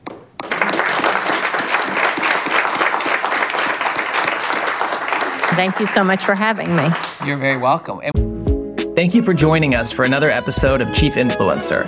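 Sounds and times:
audience applause at an in-person event: 0.4s - 7.9s
speech: 5.6s - 8.3s, 9.0s - 11.8s.

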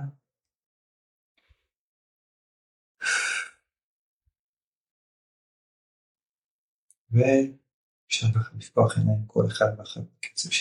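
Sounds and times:
single deep breath in and out: 3.0s - 3.6s
speech: 7.1s - 10.5s.

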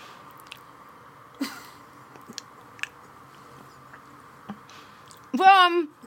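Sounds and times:
quiet room hum: 0.0s - 6.0s
person chewing food: 0.3s - 0.7s, 2.1s - 5.3s
speech: 5.4s - 6.0s.

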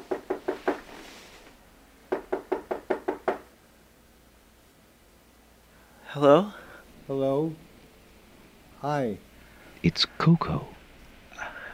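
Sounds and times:
knocking on a door: 0.0s - 0.9s, 2.1s - 3.5s
speech: 6.2s - 7.7s, 8.8s - 10.7s.

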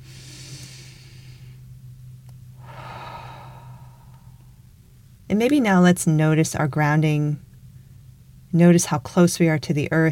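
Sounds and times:
deep breathing during a guided mindfulness exercise: 0.0s - 1.6s, 2.6s - 4.8s
faint low hum: 0.0s - 10.1s
speech: 5.3s - 7.4s, 8.5s - 10.1s.

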